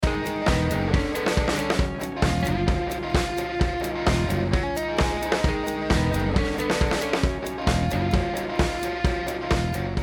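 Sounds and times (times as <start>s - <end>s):
full music mix: 0.0s - 10.0s.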